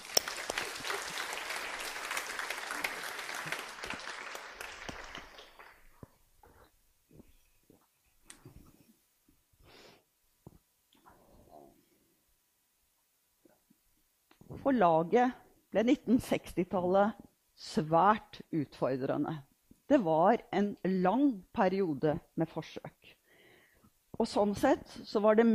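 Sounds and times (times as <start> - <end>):
audience applause: 0.0 - 6.1
speech: 14.6 - 23.2, 24.2 - 25.5.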